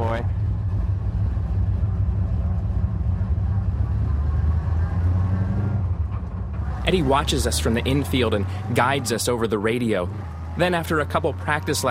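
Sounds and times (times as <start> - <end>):
race car engines starting and rumbling: 0.0 - 11.8
speech: 6.9 - 11.8.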